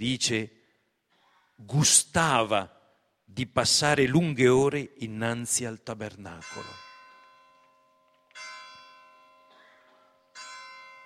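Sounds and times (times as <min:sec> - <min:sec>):
speech: 0:00.0 - 0:00.6, 0:01.6 - 0:06.8
church bells tolling: 0:06.3 - 0:11.0.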